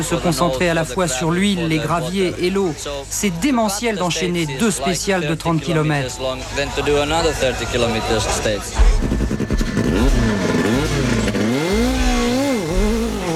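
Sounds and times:
speech: 0:00.0 - 0:09.2
white Lancia Delta group A rally car accelerating hard away from a special stage start: 0:08.3 - 0:13.3.

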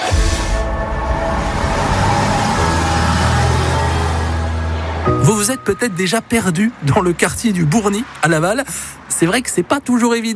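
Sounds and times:
broad road noise: 0:00.6 - 0:10.3
city bus engine rumble in Laval, Mayenne, France: 0:00.8 - 0:10.3
speech: 0:05.3 - 0:10.3.

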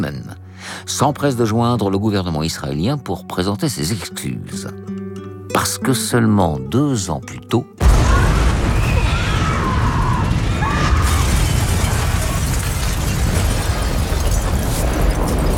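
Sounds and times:
speech: 0:00.0 - 0:05.0, 0:05.6 - 0:08.3
huge bomb explosion destroying an embassy in a city: 0:07.8 - 0:15.5.

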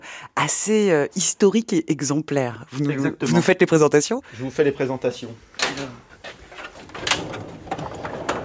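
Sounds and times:
speech: 0:00.4 - 0:05.9
wooden specimen drawer pulled open: 0:05.6 - 0:08.4.

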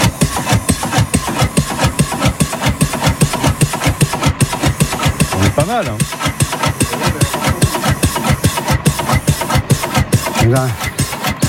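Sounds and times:
slow-to-catch engine chugging while being started: 0:00.0 - 0:11.4
speech: 0:05.7 - 0:06.2, 0:10.5 - 0:10.9.

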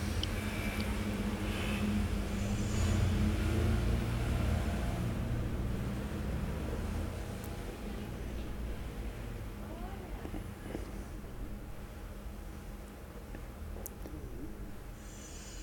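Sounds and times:
cars passing on a boulevard: 0:00.0 - 0:09.4
broadband city hum: 0:00.0 - 0:15.6
street traffic rumble on a boulevard: 0:00.0 - 0:15.6.

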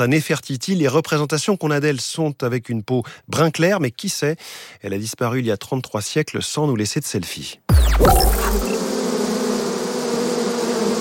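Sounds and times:
speech: 0:00.0 - 0:08.8
dense swarm of thousands of bees buzzing: 0:08.3 - 0:10.9.

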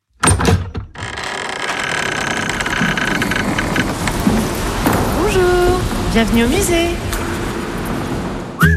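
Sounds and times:
museum door latch clicks and knocks: 0:00.2 - 0:01.8
steady hissing wash of sound: 0:02.8 - 0:08.6
speech: 0:06.2 - 0:07.1.

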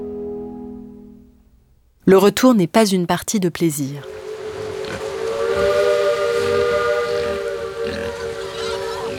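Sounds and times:
speech: 0:02.1 - 0:04.2
steamboat steam whistle: 0:04.0 - 0:09.1.

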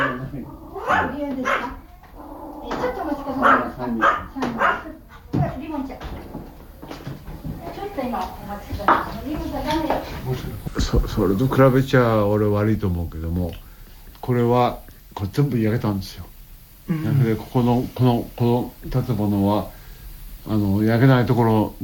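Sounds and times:
dog barking: 0:00.0 - 0:05.3
indistinct voices: 0:00.0 - 0:21.8
speech: 0:03.8 - 0:04.6, 0:08.0 - 0:13.7, 0:14.3 - 0:16.3, 0:16.9 - 0:19.8, 0:20.4 - 0:21.8.

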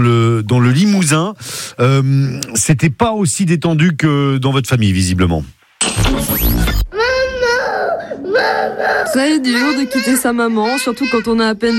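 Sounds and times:
speech: 0:00.0 - 0:06.8, 0:08.7 - 0:11.7
young children crying loudly at a nursery school: 0:06.9 - 0:11.7.

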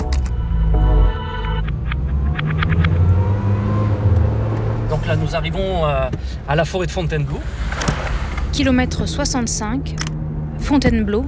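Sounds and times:
tonal whine: 0:00.0 - 0:02.8
car engine rumble on a motorway near the Fontainebleau forest, Seine-et-Marne, France: 0:00.0 - 0:11.2
road noise on a motorway: 0:00.0 - 0:11.2
speech: 0:05.3 - 0:07.8, 0:08.6 - 0:11.2.

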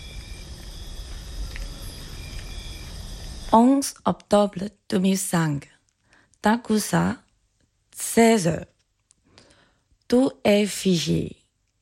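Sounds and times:
low rumbling outdoor background: 0:00.0 - 0:03.6
chorus of crickets trilling: 0:00.0 - 0:04.7
speech: 0:03.5 - 0:05.7, 0:06.4 - 0:07.2, 0:08.0 - 0:08.7, 0:10.1 - 0:11.4.

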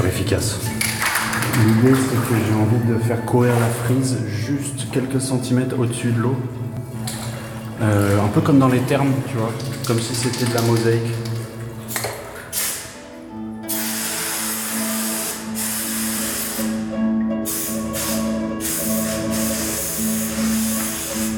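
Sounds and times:
speech: 0:00.1 - 0:00.8, 0:01.6 - 0:06.6, 0:07.8 - 0:11.3
spray paint can hissing as it coats a wall: 0:12.5 - 0:13.0, 0:13.7 - 0:21.3.

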